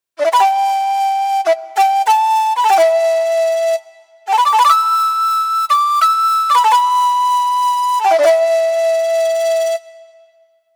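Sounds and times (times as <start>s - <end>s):
shakuhachi flute montage: 0.2s - 10.6s.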